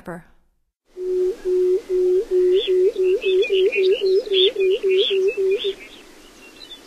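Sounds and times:
pectoral sandpiper hooting: 1.0s - 5.9s.

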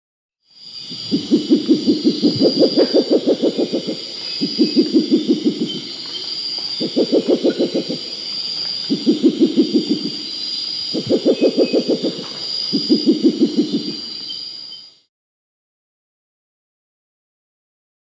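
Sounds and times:
Spectacled Owl Pulsatrix perspicillata calling in Ecuador: 0.9s - 14.4s.

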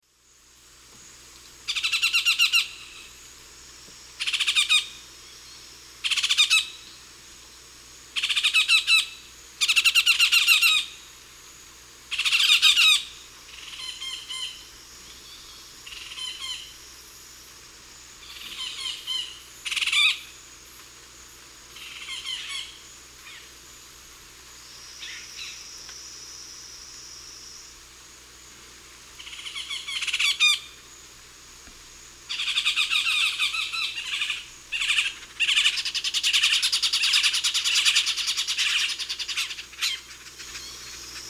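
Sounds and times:
Melanerpes cruentatus group calls in the Eastern Lowlands of South America: 1.7s - 3.2s, 4.2s - 7.0s, 8.1s - 11.0s, 12.1s - 16.8s, 18.2s - 20.4s, 21.7s - 23.5s, 29.2s - 30.9s, 31.6s - 41.2s.

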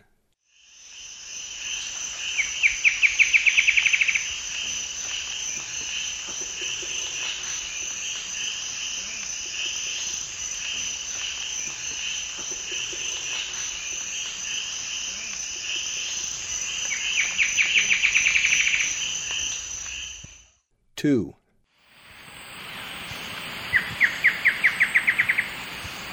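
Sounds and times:
Dugand's Antwren calling: 1.2s - 20.3s, 22.0s - 26.1s.

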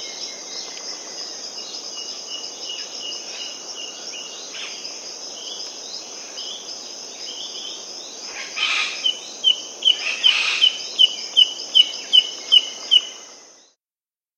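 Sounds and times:
Bamboo Antshrike calling in South America: 8.3s - 13.2s.

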